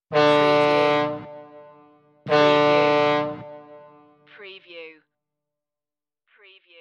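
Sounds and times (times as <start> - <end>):
fog horn: 0.0 - 4.3.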